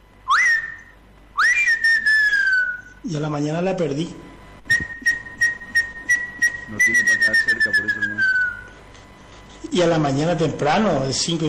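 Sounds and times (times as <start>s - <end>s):
person whistling imitation of an elegant crested tinamou call: 0.3s - 3.0s, 4.7s - 8.7s
speech: 3.0s - 4.3s, 6.9s - 8.5s, 9.7s - 11.4s.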